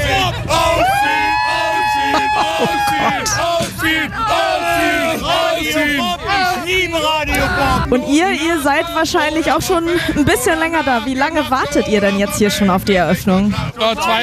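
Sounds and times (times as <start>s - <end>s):
crowd of festival fans waiting in the blazing sun cheering and yelling: 0.0s - 9.6s
laughter: 0.0s - 14.2s
many overlapping voices of festival fans whooping and shouting: 0.0s - 14.2s
speech: 7.9s - 14.2s.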